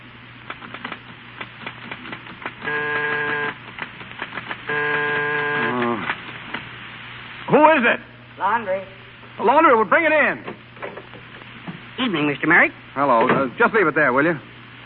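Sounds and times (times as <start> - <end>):
typewriter keys clacking: 0.5 - 4.6
loud sustained buzzing tone: 2.6 - 3.7, 4.6 - 6.4
speech: 7.6 - 10.5, 12.0 - 14.5.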